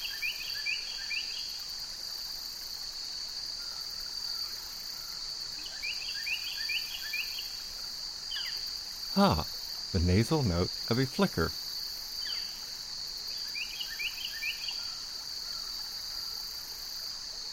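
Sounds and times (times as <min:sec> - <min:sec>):
male Carolina wren singing: 0:00.0 - 0:01.6, 0:03.6 - 0:07.7, 0:08.3 - 0:11.6, 0:12.2 - 0:12.7, 0:13.3 - 0:16.4
crickets and meadow katydids droning at a brook in autumn: 0:00.0 - 0:17.5
speech: 0:09.2 - 0:11.6.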